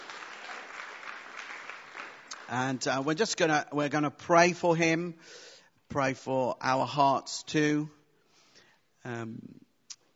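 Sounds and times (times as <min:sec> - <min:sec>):
audience applause: 0:00.0 - 0:02.8
speech: 0:02.5 - 0:08.0, 0:09.0 - 0:09.6.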